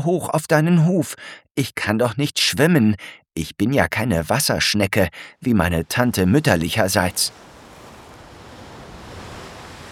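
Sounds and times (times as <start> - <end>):
speech: 0.0 - 7.5
ocean waves rolling onto a beach: 5.9 - 9.9.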